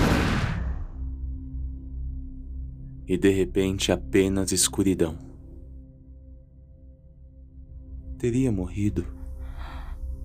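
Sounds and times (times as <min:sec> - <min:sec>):
loud explosion with a deep rumble: 0:00.0 - 0:01.0
speech: 0:03.1 - 0:05.3, 0:08.2 - 0:09.2.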